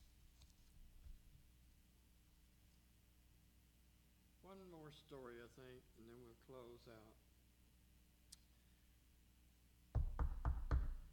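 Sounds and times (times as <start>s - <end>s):
speech: 4.5s - 7.2s
knocking on a door: 10.0s - 11.1s.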